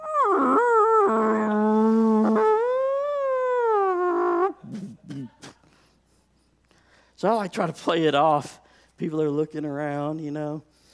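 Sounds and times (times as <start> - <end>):
voice imitating a humpback whale mating call: 0.0 - 5.6
speech: 7.2 - 10.8.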